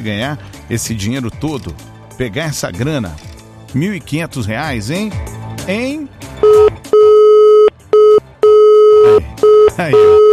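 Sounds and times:
speech: 0.0 - 6.7
telephone busy signal: 6.4 - 10.3.

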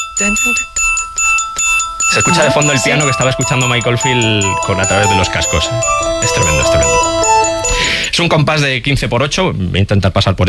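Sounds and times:
speech: 0.2 - 0.8, 2.1 - 7.2, 8.1 - 10.4
glockenspiel playing a single repeated note: 2.2 - 7.9.

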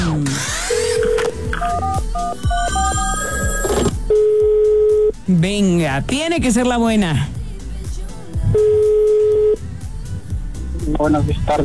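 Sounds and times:
steady rhythmic pulsing beat: 0.0 - 11.6
quick run of stepped telephone dialing tones: 0.7 - 5.2, 8.5 - 9.6
steady telephone beep for a radio call-in: 0.7 - 5.2, 8.6 - 9.6
speech: 5.3 - 7.4, 11.0 - 11.6.

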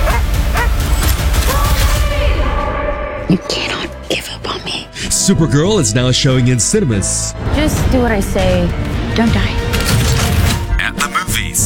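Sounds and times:
dog barking and yelping: 0.0 - 1.7
loud dense movie-style soundtrack: 0.0 - 11.6
speech: 3.3 - 3.7, 5.3 - 10.0.

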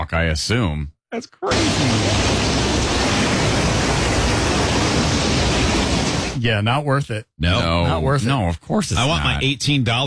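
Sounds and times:
speech: 0.1 - 2.4, 6.4 - 10.0
roar of rushing floodwater of an overflowed river: 1.5 - 6.4.

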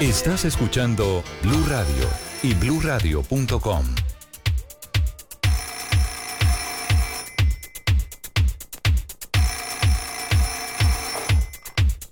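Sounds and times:
speech: 0.0 - 4.1
telephone ringing: 0.0 - 4.1, 5.4 - 8.3, 9.4 - 11.9.

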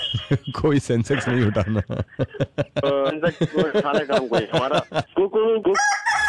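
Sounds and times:
laughter: 0.0 - 5.3
speech: 0.2 - 6.2
rooster crowing: 5.8 - 6.2.

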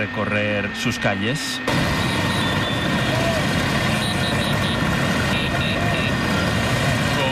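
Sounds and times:
speech: 0.0 - 2.1
many Vespa scooter engines idling and revving: 1.6 - 7.3.

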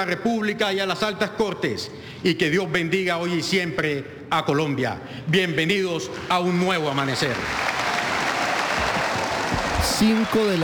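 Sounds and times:
speech: 0.0 - 7.8, 9.9 - 10.6
large indoor auditorium audience applauding: 6.8 - 10.6.

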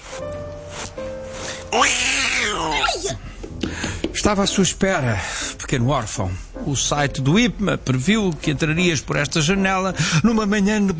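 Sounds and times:
cat meowing while stroked by a seated person in an office: 1.7 - 3.1
speech: 1.7 - 3.3, 4.2 - 10.9.

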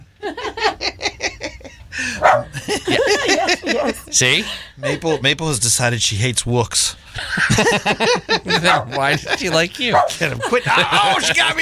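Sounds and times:
laughter: 0.2 - 5.5, 7.2 - 11.6
dog barking: 2.2 - 2.6, 8.6 - 9.0, 9.9 - 10.2
speech: 4.1 - 11.6.

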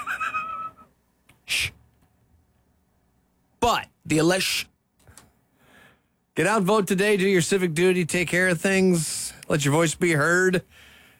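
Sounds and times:
speech: 3.6 - 4.7, 6.4 - 10.9
deep breath: 5.1 - 6.2, 10.7 - 11.1.

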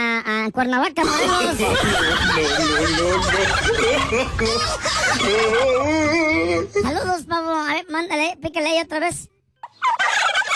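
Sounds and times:
speech: 0.5 - 10.2
laughter: 1.0 - 6.9, 9.7 - 10.5
turkey gobbling sound effect: 9.7 - 10.5.

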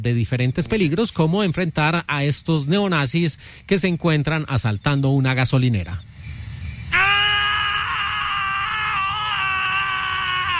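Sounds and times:
speech: 0.0 - 6.2
two men screaming in a film excerpt: 6.9 - 10.5.

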